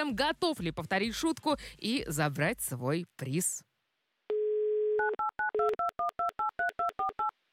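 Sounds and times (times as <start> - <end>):
speech: 0.0 - 3.7
phone dial tone: 4.3 - 7.3.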